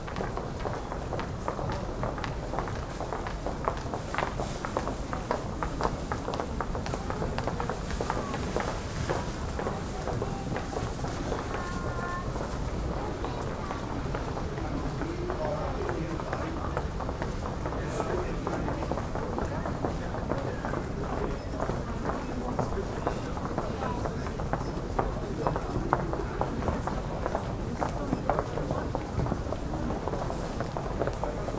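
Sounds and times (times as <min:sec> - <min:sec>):
people footsteps in urban and suburban area: 0:00.0 - 0:31.5
urban babble of voices: 0:06.3 - 0:31.5.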